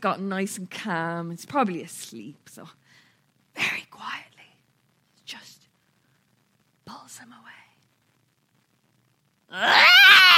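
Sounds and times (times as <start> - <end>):
speech: 0.0 - 2.8, 6.9 - 7.6, 9.5 - 10.3
voice imitating a screaming, crying baby: 9.5 - 10.3.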